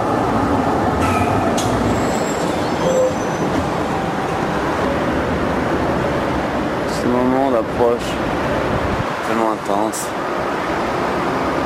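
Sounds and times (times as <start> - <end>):
busy city street noise: 0.0 - 11.6
tram wheels rumbling on rails through a city intersection: 0.0 - 11.6
high metallic tram squeals: 1.0 - 5.2
speech: 7.6 - 8.3, 9.4 - 10.4.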